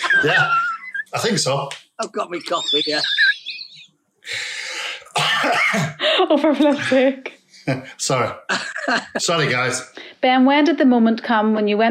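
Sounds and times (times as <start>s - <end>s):
laughter: 0.0s - 7.0s, 7.7s - 9.8s
speech: 0.2s - 3.2s, 5.4s - 11.8s
person coughing at a breakfast table: 4.7s - 6.0s.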